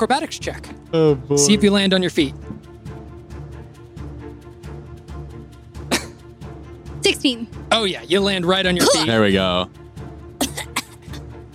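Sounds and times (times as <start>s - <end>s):
speech: 0.0s - 2.5s, 7.2s - 9.8s
person coughing: 5.9s - 6.2s, 8.8s - 9.4s, 10.4s - 11.2s.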